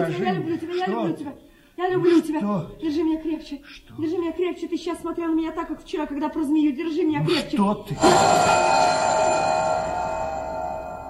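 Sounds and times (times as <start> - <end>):
speech: 0.0 - 9.7
bell ringing: 8.0 - 11.0.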